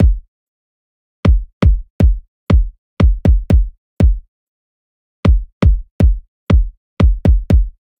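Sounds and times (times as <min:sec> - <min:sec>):
dance pop kick drum: 0:00.0 - 0:00.3, 0:01.3 - 0:04.3, 0:05.2 - 0:07.8.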